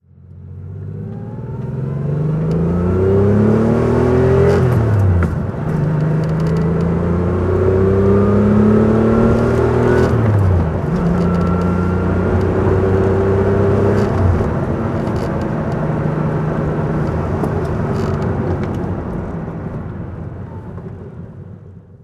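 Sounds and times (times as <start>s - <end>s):
Porsche 911SC driving: 0.0s - 22.0s.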